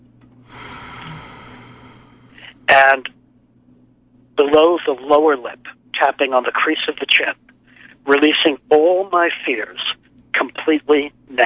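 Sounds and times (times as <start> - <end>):
full deep breath in and out during a guided tapping relaxation exercise: 0.4 - 2.7
speech: 2.7 - 3.2, 4.4 - 11.4.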